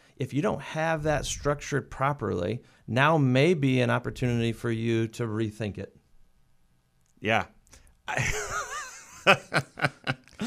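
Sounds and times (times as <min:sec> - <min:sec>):
speech: 0:00.2 - 0:06.0, 0:07.2 - 0:08.4, 0:09.2 - 0:10.0
wheezy exhale and sharp puffs of breath into a microphone: 0:02.6 - 0:02.9
laughter: 0:08.2 - 0:10.4.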